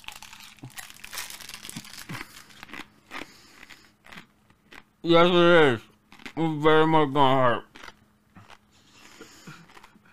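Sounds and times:
person chewing something thick with wet sticky mouth noises: 0:00.0 - 0:04.9, 0:06.0 - 0:06.4, 0:07.6 - 0:10.1
speech: 0:05.0 - 0:07.7.

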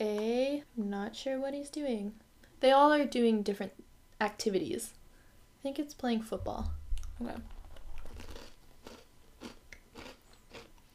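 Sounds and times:
speech: 0:01.0 - 0:05.0, 0:05.6 - 0:07.6
biting and chewing a crunchy butter-flavored snack: 0:07.0 - 0:10.9.

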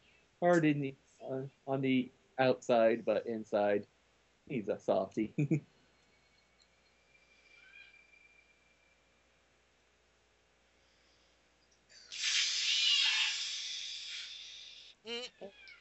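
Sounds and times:
speech: 0:00.4 - 0:05.7
cat hissing: 0:12.1 - 0:15.0
cat yowling: 0:12.2 - 0:14.4.

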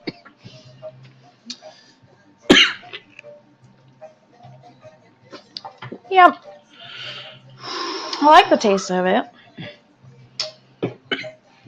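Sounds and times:
harsh cough: 0:02.5 - 0:03.0
speech: 0:06.1 - 0:06.4, 0:08.2 - 0:09.3.

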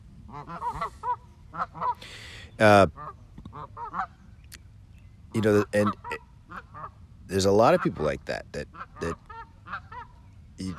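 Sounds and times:
speech: 0:00.3 - 0:03.0, 0:05.4 - 0:06.2, 0:07.3 - 0:09.2, 0:10.6 - 0:10.7
duck quacking: 0:00.3 - 0:04.2, 0:05.4 - 0:10.7.

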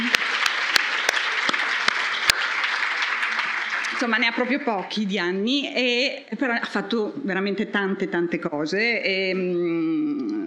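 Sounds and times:
small group clapping: 0:00.0 - 0:05.2
speech: 0:04.0 - 0:10.4.

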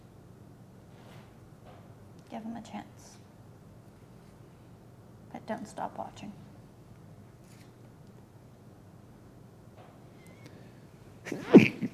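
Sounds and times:
speech: 0:02.3 - 0:03.2, 0:05.5 - 0:06.4, 0:11.3 - 0:11.7
person sneezing: 0:11.3 - 0:11.9.

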